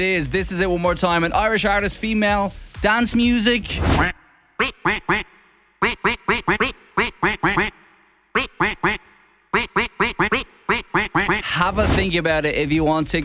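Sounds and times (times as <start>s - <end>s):
speech: 0.0s - 4.2s, 11.7s - 13.2s
duck quacks playing a dance music song melody: 4.0s - 11.6s.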